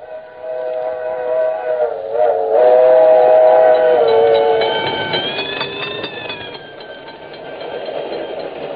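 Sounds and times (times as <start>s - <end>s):
rumble of a passing train: 0.0s - 8.7s
railroad crossing bell ringing heard from a moving train: 3.2s - 8.7s.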